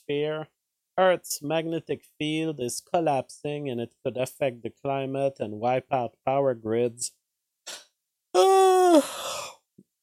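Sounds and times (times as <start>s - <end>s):
speech: 0.1s - 7.2s, 8.9s - 9.3s
person yawning: 8.4s - 9.6s.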